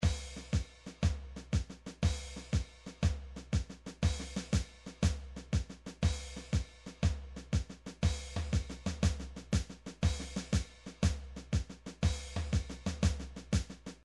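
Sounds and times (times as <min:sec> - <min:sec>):
MIDI marching drums: 0:00.0 - 0:14.0.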